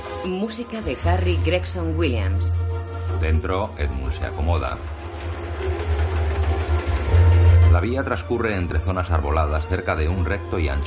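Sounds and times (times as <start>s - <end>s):
speech: 0.2s - 5.0s, 7.8s - 10.8s
train starting to move: 3.1s - 9.6s.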